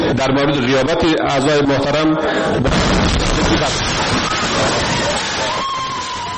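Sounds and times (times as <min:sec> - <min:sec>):
speech: 0:00.2 - 0:05.3
loud explosion: 0:02.6 - 0:06.3.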